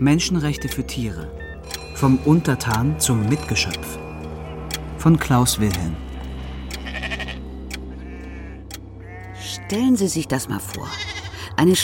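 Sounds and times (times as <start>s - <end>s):
speech: 0.0s - 4.1s, 5.0s - 6.0s, 9.7s - 11.8s
sheep bleating: 6.8s - 7.4s, 8.0s - 9.8s, 10.7s - 11.4s.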